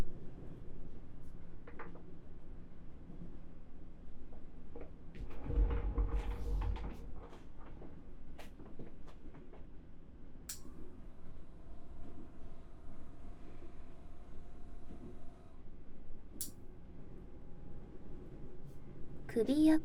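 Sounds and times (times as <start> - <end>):
steady hum: 0.0 - 19.8
salon chair swiveling and tilting back with mechanical rumble and creak: 5.2 - 8.0
speech: 19.4 - 19.8.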